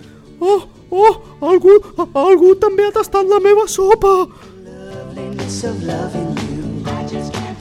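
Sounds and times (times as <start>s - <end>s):
person imitating a mother bear growl in a told story: 0.4s - 2.6s
speech: 0.4s - 4.6s, 5.5s - 6.5s.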